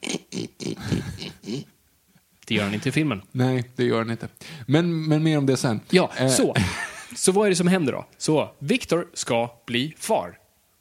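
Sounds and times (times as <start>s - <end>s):
person imitating a pig with rhythmic grunting snorts: 0.0s - 1.8s
speech: 2.5s - 10.4s.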